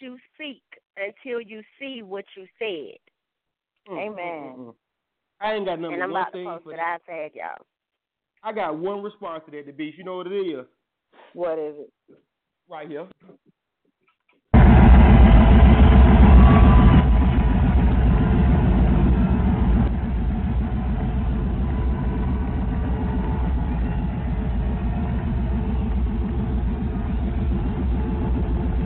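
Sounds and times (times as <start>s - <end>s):
speech: 1.3s - 3.1s, 3.8s - 4.8s, 5.4s - 7.7s, 8.4s - 13.6s
car engine starting and idling: 14.6s - 28.8s.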